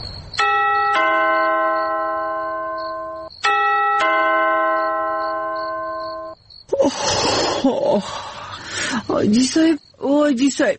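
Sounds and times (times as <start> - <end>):
two-tone electronic doorbell chime: 0.4 - 6.4
people talking: 6.7 - 8.2, 8.8 - 10.7.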